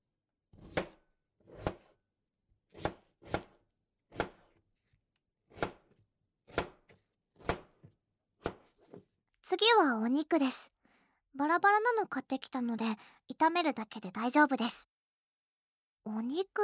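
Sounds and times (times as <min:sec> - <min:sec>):
knife chopping potatoes into small pieces: 0:00.5 - 0:02.0, 0:02.7 - 0:04.6, 0:05.4 - 0:09.1
speech: 0:09.5 - 0:10.7, 0:11.4 - 0:14.9, 0:16.0 - 0:16.6.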